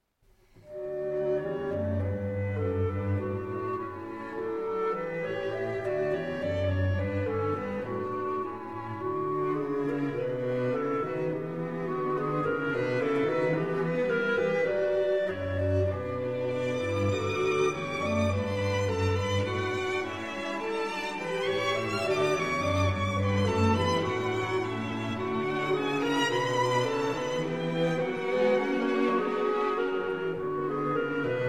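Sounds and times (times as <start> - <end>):
clarinet quintet playing in B minor: 0.6 - 31.4.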